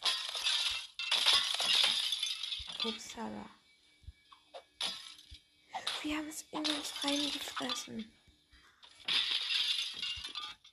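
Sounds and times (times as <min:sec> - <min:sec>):
picture frame glass smashed in a video game: 0:00.0 - 0:03.0, 0:04.8 - 0:05.4, 0:08.8 - 0:10.7
speech: 0:02.8 - 0:03.6, 0:06.0 - 0:08.2.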